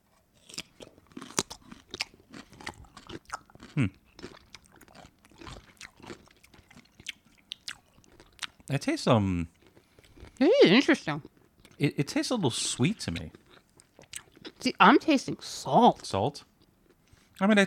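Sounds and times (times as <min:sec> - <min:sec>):
biting and chewing a crunchy dill pickle flavoured snack: 0:00.1 - 0:08.8, 0:09.5 - 0:10.4, 0:13.1 - 0:14.6
speech: 0:03.8 - 0:04.0, 0:08.7 - 0:09.6, 0:10.4 - 0:13.4, 0:14.6 - 0:16.5, 0:17.4 - 0:17.6.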